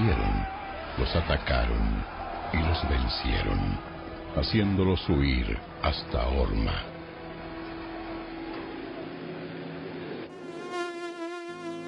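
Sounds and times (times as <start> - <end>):
speech: 1.0 - 6.9
mosquito buzzing: 10.3 - 11.8.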